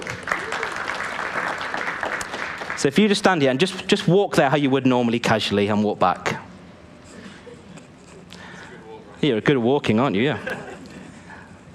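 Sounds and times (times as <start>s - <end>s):
room full of people clapping: 0.0s - 3.0s
speech: 2.8s - 6.4s, 9.2s - 10.7s.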